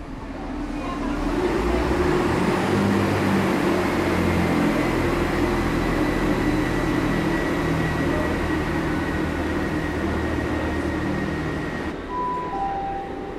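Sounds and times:
train rumbling as it departs from a station: 0:00.0 - 0:13.3.

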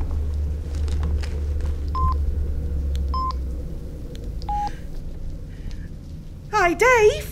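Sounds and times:
steady low rumble: 0:00.0 - 0:07.3
electronic DTMF keypad tones as a phone number is dialled: 0:04.5 - 0:04.7
speech: 0:06.7 - 0:07.3.

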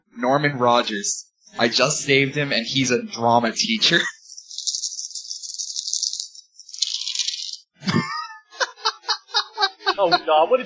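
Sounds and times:
speech: 0:00.2 - 0:04.2, 0:10.0 - 0:10.6
pulsing laughter-like vocal sounds: 0:03.7 - 0:04.4, 0:07.8 - 0:10.5
dice rattling: 0:04.1 - 0:07.7.

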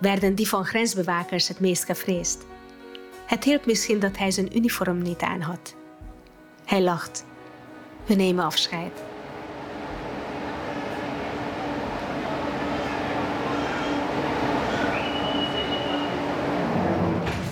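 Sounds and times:
speech: 0:00.0 - 0:02.6, 0:03.3 - 0:05.8, 0:06.7 - 0:07.3, 0:08.0 - 0:09.1
rumble inside a moving train carriage heading toward Budapest: 0:07.6 - 0:17.4
brief high squeal in a moving train: 0:14.6 - 0:16.3.

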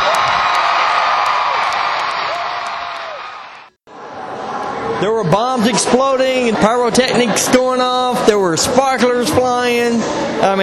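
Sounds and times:
arena crowd cheering for a band: 0:00.0 - 0:08.6
speech: 0:05.0 - 0:10.6.

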